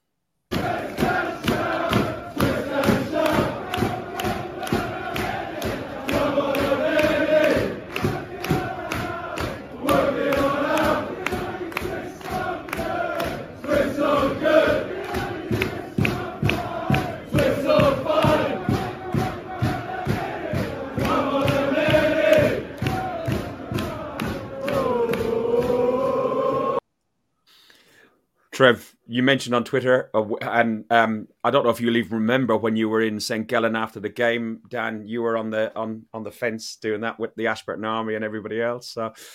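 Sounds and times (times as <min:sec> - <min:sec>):
football fans clapping or stamping in a stadium: 0:00.5 - 0:26.5
football fans in a large stadium singing a rhythmic chant: 0:00.5 - 0:26.8
speech: 0:28.6 - 0:39.3.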